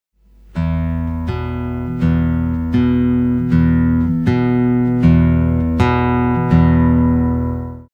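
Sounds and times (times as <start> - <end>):
guitar E and A notes played with thumb: 0.6 - 7.9.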